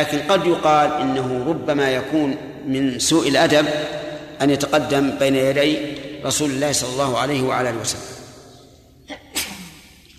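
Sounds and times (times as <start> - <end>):
speech: 0.0 - 8.2
single sneeze preceded by a quick catch of breath: 9.1 - 10.1.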